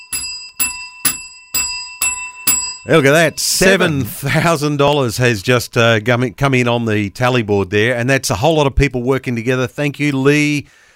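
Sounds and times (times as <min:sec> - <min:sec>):
handbell rung for a donation tally: 0:00.0 - 0:03.6
speech: 0:02.8 - 0:10.8.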